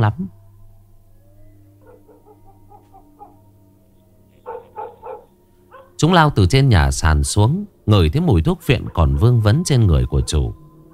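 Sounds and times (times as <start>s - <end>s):
speech: 0.0s - 0.4s, 6.0s - 10.6s
low steady hum: 0.0s - 10.9s
H'mong bobtail dogs barking excitedly by a stilt house: 1.7s - 6.0s, 8.6s - 10.9s.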